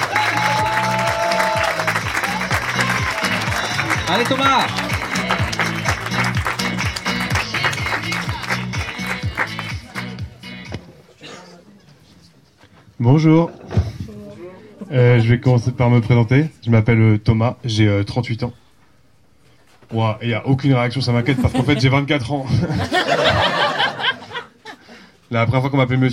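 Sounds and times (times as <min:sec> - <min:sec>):
dense audience applause for a comedian: 0:00.0 - 0:10.2
steady thumping music beat: 0:00.0 - 0:10.8
speech: 0:04.1 - 0:04.8, 0:13.0 - 0:13.6, 0:14.9 - 0:18.6, 0:19.9 - 0:23.4, 0:25.3 - 0:26.1
laughter: 0:21.1 - 0:25.1.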